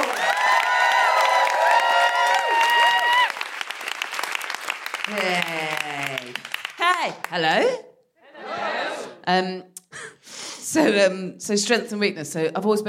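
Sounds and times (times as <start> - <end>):
high whooping cheers: 0.0 - 3.6
audience applause at a live show: 0.0 - 7.3
speech: 7.0 - 7.9, 9.3 - 9.7, 10.7 - 12.8.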